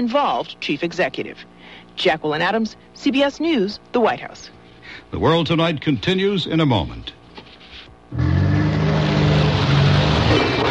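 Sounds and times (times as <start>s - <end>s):
speech: 0.0s - 7.2s, 8.1s - 8.3s
car braking hard with tires and engine roaring: 8.1s - 10.6s.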